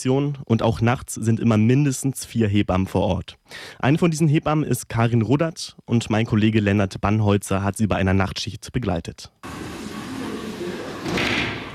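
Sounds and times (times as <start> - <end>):
speech: 0.0 - 9.9
sliding door to a hospital delivery room pushed open: 9.4 - 11.7.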